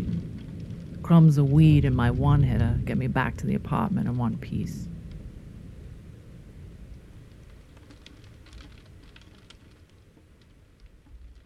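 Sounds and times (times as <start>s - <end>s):
rain pattering on city pavement heard through a cracked-open window: 0.0s - 11.4s
speech: 1.1s - 5.0s.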